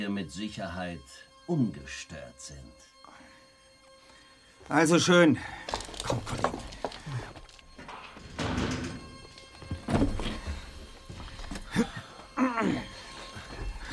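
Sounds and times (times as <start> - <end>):
speech: 0.0 - 2.9, 4.6 - 7.4
door thumps and rattling knocks: 7.9 - 10.6.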